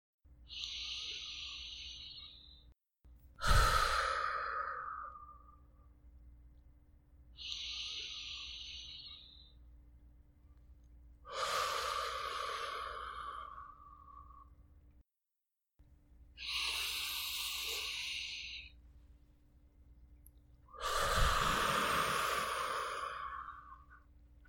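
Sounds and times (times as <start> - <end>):
deep slow breaths of a person lying down relaxing: 0.5 - 5.9, 11.3 - 14.6, 16.4 - 18.8, 20.7 - 24.1.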